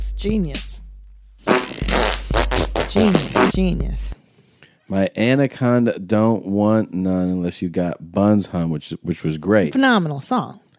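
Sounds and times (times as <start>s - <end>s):
speech: 0.2s - 0.8s, 2.9s - 4.2s, 4.9s - 10.6s
raspy fart sound effects: 1.4s - 3.7s.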